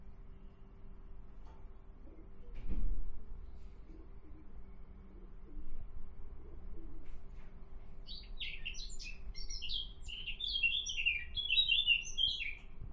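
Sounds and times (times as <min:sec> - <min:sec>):
Eurasian blackcap Sylvia atricapilla song: 0:08.0 - 0:12.8.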